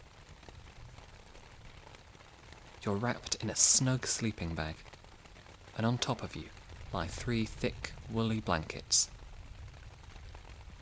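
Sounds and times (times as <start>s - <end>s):
rain falling on a tent on a cold rainy day: 0.0s - 10.8s
speech: 2.8s - 4.9s, 5.8s - 9.2s.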